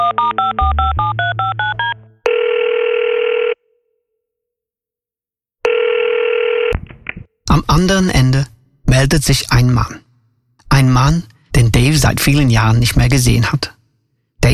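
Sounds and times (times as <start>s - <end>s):
long loud telephone ringback tones: 0.0s - 3.6s, 5.7s - 6.7s
speech: 7.8s - 10.0s, 10.7s - 13.8s.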